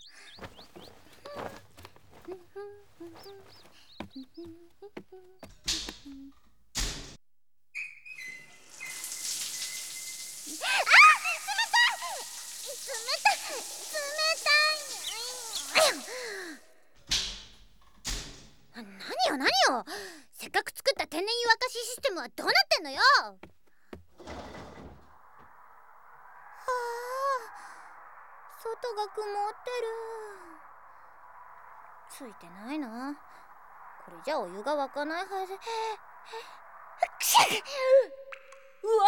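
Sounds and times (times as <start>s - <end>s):
speech: 3.0s - 6.5s, 12.9s - 14.8s, 18.8s - 23.6s, 28.6s - 30.6s, 32.1s - 33.3s, 34.1s - 38.2s, 38.8s - 39.0s
knocks and clicks: 5.4s - 7.2s
warbling chirpy tones: 7.8s - 16.3s, 24.8s - 39.0s
shower water spraying: 8.4s - 17.4s, 24.5s - 38.8s.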